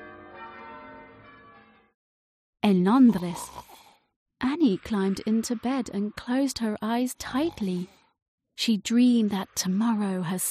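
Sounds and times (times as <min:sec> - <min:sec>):
church bell ringing at midnight: 0:00.0 - 0:01.9
speech: 0:02.6 - 0:03.7, 0:04.6 - 0:08.0, 0:08.6 - 0:10.4.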